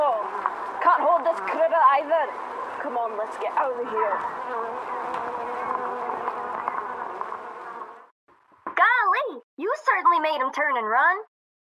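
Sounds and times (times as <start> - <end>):
swarm of wasps buzzing from a nest in a tree broken open by bullets: 0.0 - 8.1
speech: 1.1 - 5.5, 10.0 - 11.3.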